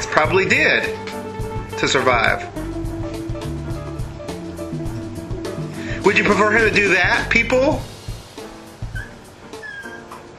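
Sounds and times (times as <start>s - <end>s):
speech: 0.2s - 1.1s, 1.8s - 2.6s, 6.0s - 7.9s
low thumps: 0.3s - 9.2s
dog whimpering: 8.9s - 10.3s.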